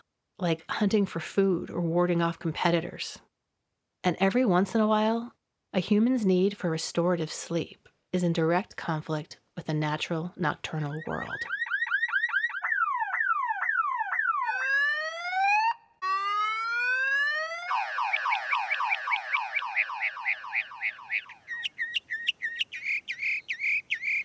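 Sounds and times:
speech: 0.4s - 3.3s, 4.0s - 11.6s
mockingbird mimicking a car alarm: 10.8s - 16.9s, 17.5s - 24.2s.

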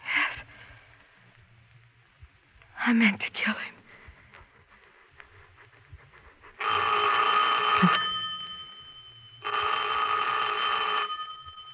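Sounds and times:
speech: 2.8s - 3.8s
telephone bell ringing: 6.6s - 11.7s.

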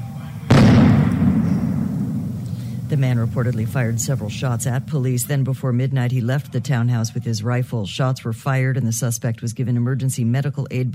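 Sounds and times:
police stun grenade or flashbang blast at night: 0.0s - 5.0s
quiet hum: 0.0s - 8.6s
speech: 2.9s - 10.9s.

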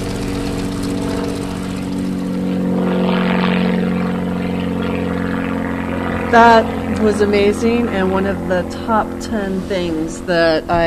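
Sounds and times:
barnstorming propeller biplane engine droning in flight: 0.0s - 10.8s
speech: 6.3s - 10.8s.

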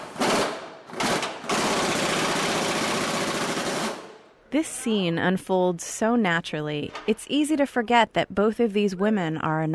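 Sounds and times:
electric impact gun working a bolt: 0.2s - 4.2s
speech: 4.5s - 9.7s.

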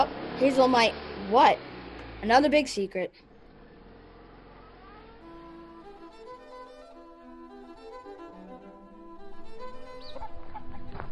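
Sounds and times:
speech: 0.0s - 3.3s
group of free-range chickens clucking on muddy ground: 9.9s - 11.1s.

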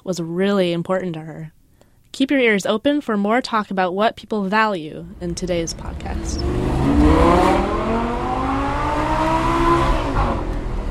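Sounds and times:
speech: 0.0s - 1.6s, 2.2s - 7.8s
fast car engine accelerating and revving: 5.0s - 10.8s.

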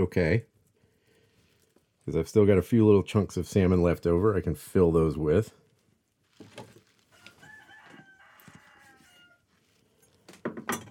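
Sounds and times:
speech: 0.0s - 0.5s, 2.1s - 5.6s
rooster crowing: 7.1s - 9.6s
sharp clattering kitchen sounds: 10.3s - 10.8s.

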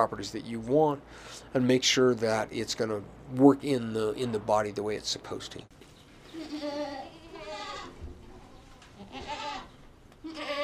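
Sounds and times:
speech: 0.0s - 5.9s
goats bleating in a barn: 6.3s - 10.6s.

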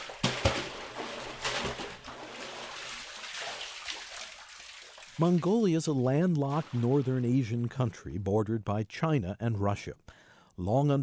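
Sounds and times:
water sloshing and trickling drawn up from a deep well: 0.0s - 8.0s
speech: 5.2s - 11.0s.

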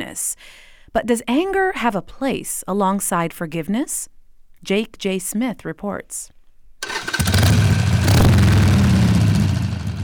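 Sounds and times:
speech: 0.2s - 6.4s
Harley-Davidson motorcycle engine starting, revving and idling: 6.8s - 10.0s.

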